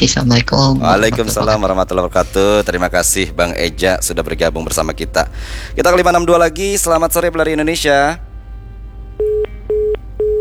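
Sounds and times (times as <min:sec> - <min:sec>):
speech: 0:00.0 - 0:08.3
laughter: 0:00.8 - 0:02.8
telephone busy tone after a call is cut off: 0:09.2 - 0:10.3.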